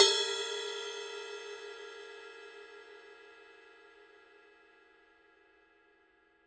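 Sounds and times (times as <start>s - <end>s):
ride cymbal bell: 0.0s - 3.4s.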